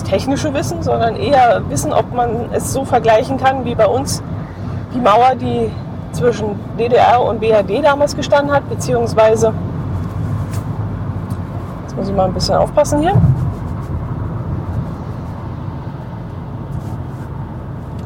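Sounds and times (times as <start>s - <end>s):
low rumble and road noise of a moving car cabin: 0.0s - 18.0s
speech: 0.1s - 9.7s, 12.0s - 13.4s.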